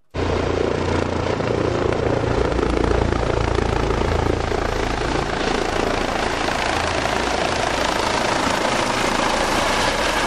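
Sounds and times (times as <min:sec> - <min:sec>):
Eurocopter rescue helicopter approaching hospital landing pad in Göttingen: 0:00.2 - 0:10.2.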